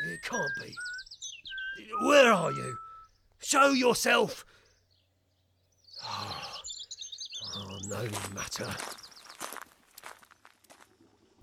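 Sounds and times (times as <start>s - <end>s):
speech: 0.3s - 1.0s, 1.8s - 2.8s, 3.4s - 4.5s, 7.9s - 9.0s
person's footsteps: 8.2s - 11.4s.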